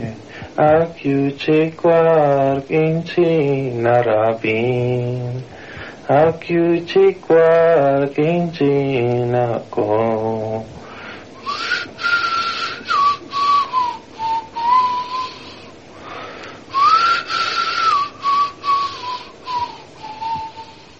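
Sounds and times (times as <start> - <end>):
speech: 0.3 - 10.8
person whistling a flute-like melody: 11.4 - 15.7, 16.7 - 20.9.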